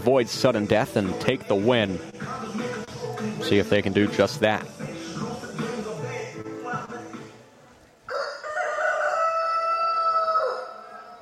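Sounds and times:
speech: 0.0 - 2.6, 3.4 - 4.8
rally rooster crowing at a baseball game: 8.1 - 11.2.

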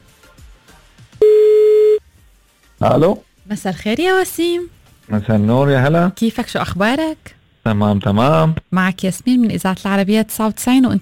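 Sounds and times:
telephone ringing tone while calling a radio contest winner: 1.2 - 2.0
speech: 2.8 - 10.9.

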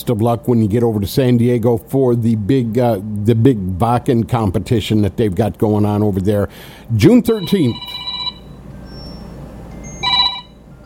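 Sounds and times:
speech: 0.0 - 8.0
quiet hum: 0.0 - 10.8
telephone ringing with a bright warbling electronic tone: 7.3 - 8.6, 9.7 - 10.8
faint beeps: 7.3 - 10.8.

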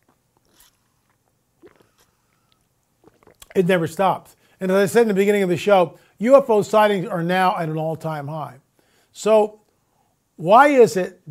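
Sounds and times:
small mouth noises: 0.0 - 3.6
wet slurping sips from a drink: 0.0 - 3.6
speech: 3.6 - 8.6, 9.2 - 9.6, 10.4 - 11.2.

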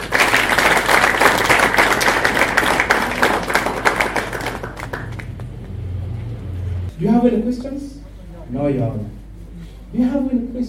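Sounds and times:
crowd applauding to welcome a speaker: 0.0 - 5.9
speech: 7.0 - 9.2, 9.9 - 10.6.

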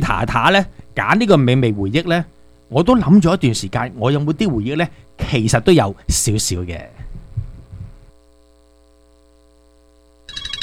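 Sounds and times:
speech: 0.1 - 7.0
soft low thumps: 6.9 - 8.2
phone electronic ringtone chime for incoming video call: 10.3 - 10.6.

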